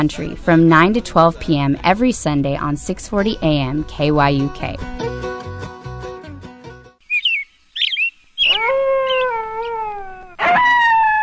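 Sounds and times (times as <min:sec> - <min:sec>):
speech: 0:00.0 - 0:05.2
coyote yips and howls: 0:07.1 - 0:11.2.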